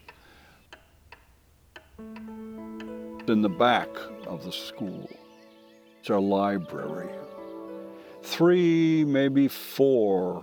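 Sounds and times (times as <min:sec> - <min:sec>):
old clock ticking in a quiet room: 0:00.0 - 0:04.8
speech: 0:02.0 - 0:02.6, 0:03.3 - 0:05.2, 0:06.0 - 0:07.3, 0:08.2 - 0:10.4
sustained chime-like tone: 0:03.4 - 0:09.1.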